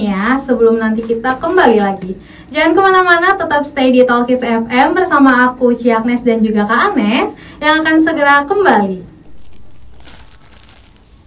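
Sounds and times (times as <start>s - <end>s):
speech: 0.0s - 9.1s
used plastic drink bottle being crumpled: 9.1s - 11.2s.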